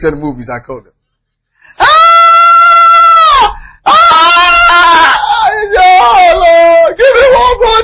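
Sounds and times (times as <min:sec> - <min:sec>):
speech: 0:00.0 - 0:01.0
person screaming in anguish: 0:01.8 - 0:07.8.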